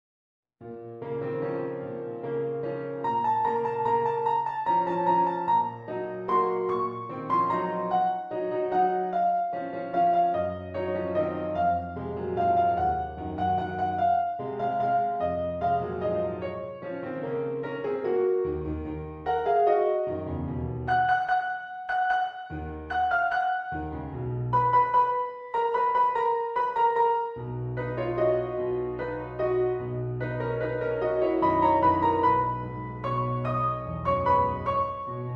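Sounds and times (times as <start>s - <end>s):
piano vignette: 0.6s - 35.3s.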